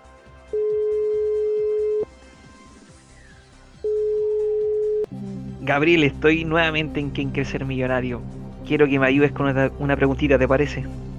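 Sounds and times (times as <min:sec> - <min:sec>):
faint steady background: 0:00.0 - 0:11.1
ringback tone of a phone call placed as a quiz show lifeline: 0:00.5 - 0:02.1, 0:03.8 - 0:05.1
speech: 0:05.7 - 0:11.0.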